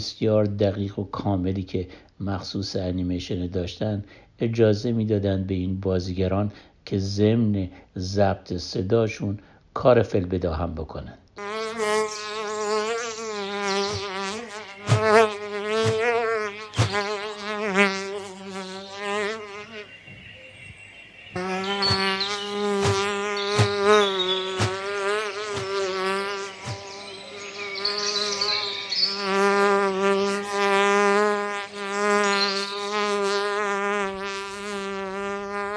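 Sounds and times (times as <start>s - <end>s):
speech: 0.0s - 11.2s
fly buzzing in a droning whine: 11.4s - 20.0s, 21.3s - 35.7s.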